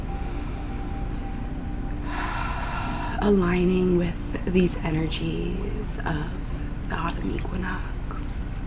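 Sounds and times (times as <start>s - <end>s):
long steady deep inhale: 0.0s - 3.2s
bright breathy exhale: 2.0s - 3.2s
speech: 3.2s - 8.5s.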